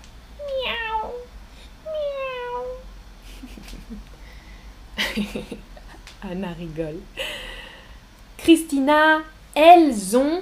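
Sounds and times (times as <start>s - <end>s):
cat meowing with downward sliding pitch: 0.4s - 1.3s, 1.9s - 2.8s
laughter: 5.0s - 5.6s
speech: 5.2s - 7.2s, 8.4s - 10.4s.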